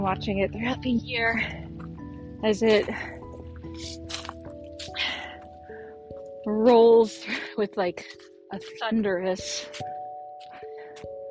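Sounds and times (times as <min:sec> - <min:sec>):
speech: 0:00.0 - 0:01.6, 0:02.4 - 0:04.2, 0:06.4 - 0:10.0
water trickling and dripping in a small creek running low: 0:01.2 - 0:09.9.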